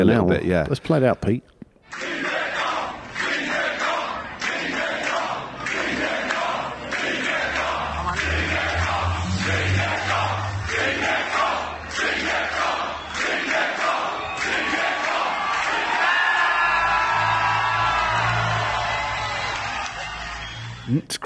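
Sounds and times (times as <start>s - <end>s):
speech: 0.0s - 2.2s, 20.9s - 21.2s
large crowd chanting a rider's name under a road bridge: 1.8s - 20.9s
low rumble: 7.1s - 11.9s
whoops: 15.3s - 20.9s.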